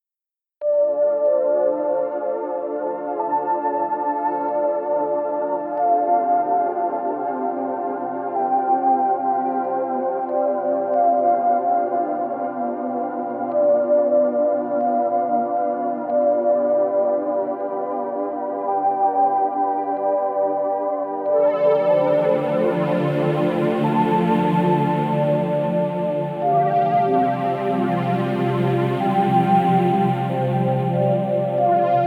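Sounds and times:
VHS-style dreamwave music: 0.6s - 32.0s.

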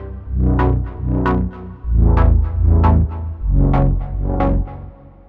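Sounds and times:
held chord: 0.3s - 5.2s.

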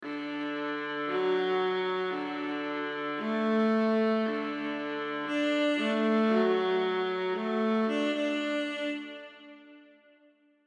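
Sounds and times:
viola strings playing legato: 0.0s - 10.0s.

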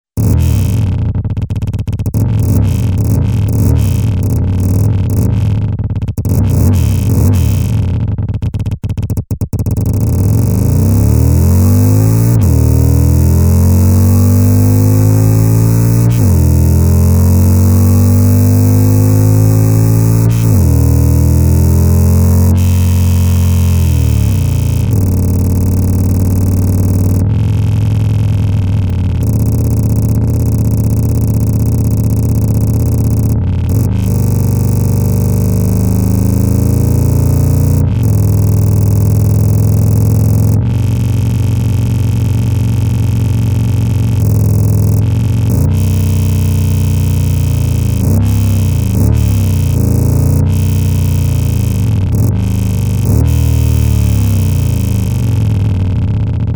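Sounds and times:
burly motorcycle engine: 0.0s - 56.5s.

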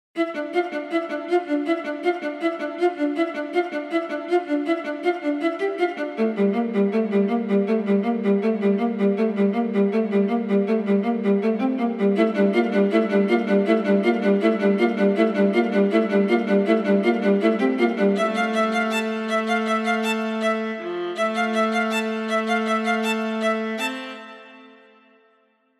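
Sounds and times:
viola playing: 0.2s - 25.3s.

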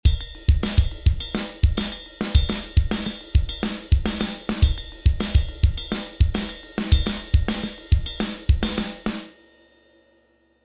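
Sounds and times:
rock drum kit: 0.0s - 9.3s.

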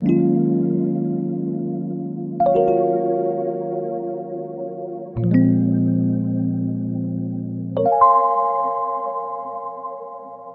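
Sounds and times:
dry Rhodes electric piano: 0.0s - 10.5s.

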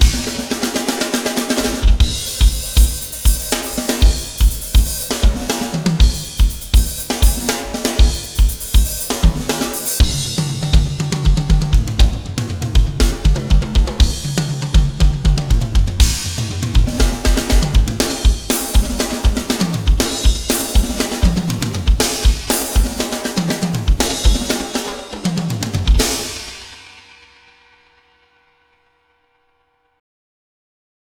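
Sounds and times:
big rock drums: 0.0s - 27.4s.

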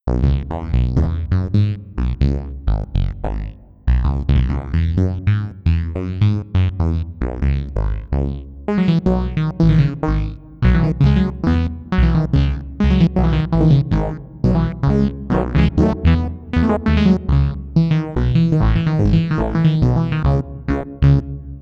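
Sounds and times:
bass sound without delay effect: 0.0s - 21.6s.

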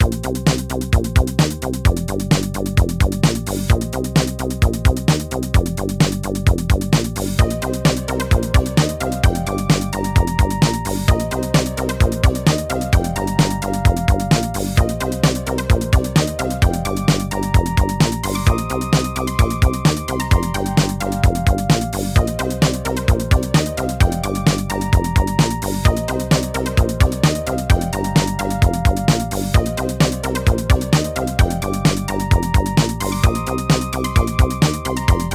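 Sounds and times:
synthesizer bass line: 0.0s - 35.3s.

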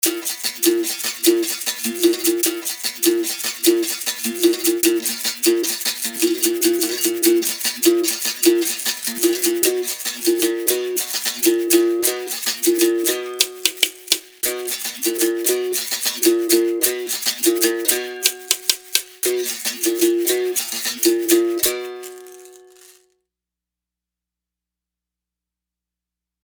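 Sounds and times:
berimbau: 0.0s - 23.0s.

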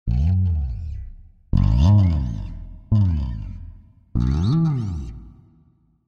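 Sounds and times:
bass slides: 0.1s - 5.2s.

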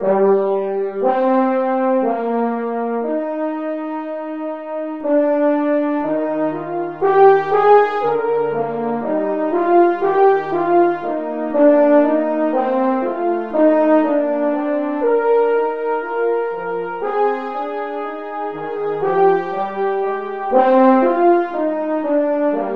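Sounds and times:
french horn section playing: 0.0s - 22.7s.

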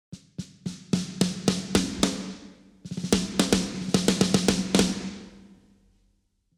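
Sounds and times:
Yamaha 9000 snare drum hits: 0.1s - 5.6s.

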